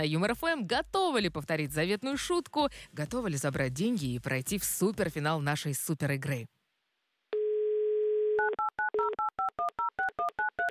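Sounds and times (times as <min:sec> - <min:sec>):
speech: 0:00.0 - 0:06.6
telephone dial tone: 0:07.4 - 0:10.7.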